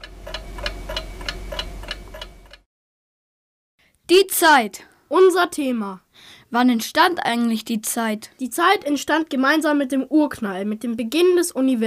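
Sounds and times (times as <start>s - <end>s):
clock ticking: 0.0s - 2.6s
low hum: 0.0s - 2.6s
speech: 4.1s - 11.8s.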